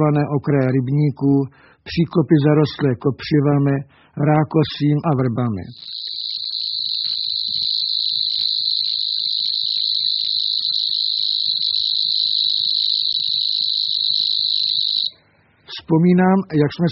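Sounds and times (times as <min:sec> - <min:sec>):
speech: 0:00.0 - 0:06.2, 0:15.9 - 0:16.8
Locustella warbler reeling song: 0:05.7 - 0:15.2.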